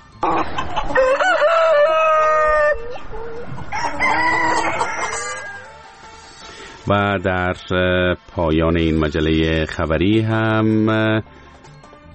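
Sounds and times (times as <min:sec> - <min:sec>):
speech: 0:00.2 - 0:01.4, 0:06.9 - 0:11.4
hens clucking in a farmyard: 0:00.2 - 0:06.0
rooster crowing: 0:00.2 - 0:06.0.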